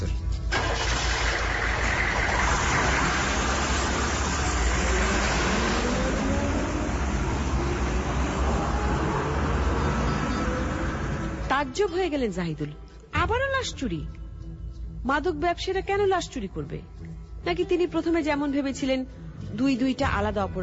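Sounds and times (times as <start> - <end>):
car engine running as the vehicle is brought out: 0.6 - 11.7
speech: 11.7 - 14.2, 15.0 - 20.6.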